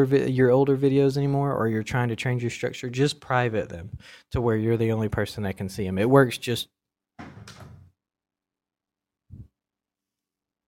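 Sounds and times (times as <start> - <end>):
speech: 0.0 - 7.6
front screen door scraping and rattling open: 7.2 - 7.9.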